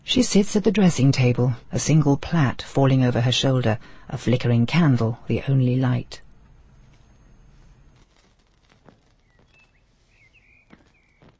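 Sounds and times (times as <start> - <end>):
speech: 0.1 - 6.2
soft rustling: 6.4 - 11.3
bird whistles chirping before dawn: 9.2 - 11.3.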